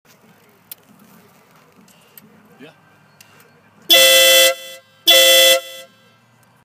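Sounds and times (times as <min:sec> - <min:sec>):
motorcycle air horn on a BMW K1300S: 0:03.9 - 0:06.1.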